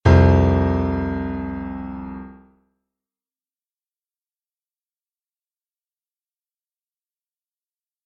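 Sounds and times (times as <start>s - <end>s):
piano playing a perfect fourth interval: 0.0s - 2.4s.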